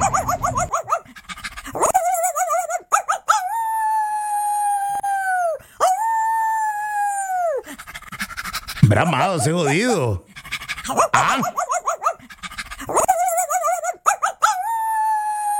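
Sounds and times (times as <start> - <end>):
several dogs yelping and howling: 0.0 - 7.6, 10.9 - 15.5
speech: 8.9 - 10.3, 10.9 - 11.6.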